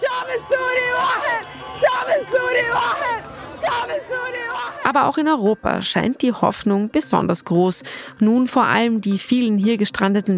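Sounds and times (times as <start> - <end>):
large street crowd chanting slogans in Arabic: 0.0 - 6.2
constant roar of street crowd hubbub: 0.0 - 8.9
speech: 5.0 - 10.3.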